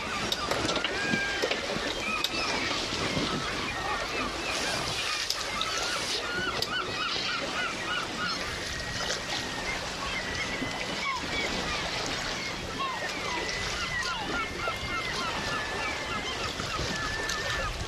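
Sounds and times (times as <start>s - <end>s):
dense flock of waterbirds calling and squabbling in floating rafts at sunset: 0.0s - 17.8s
faint creak of a sailing boat: 0.0s - 17.8s.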